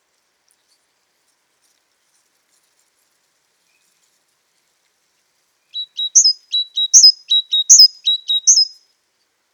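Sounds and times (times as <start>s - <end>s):
great tit Parus major giving paired notes: 5.8s - 8.7s.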